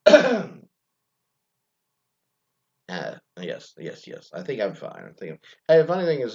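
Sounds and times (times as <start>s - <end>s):
person clearing throat and coughing: 0.0s - 0.6s
speech: 2.9s - 6.3s.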